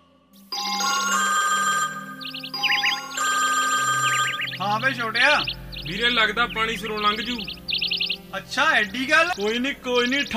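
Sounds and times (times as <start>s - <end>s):
telephone electronic ringtone while placing a call: 0.5s - 5.6s
speech: 4.8s - 7.6s, 8.3s - 10.3s.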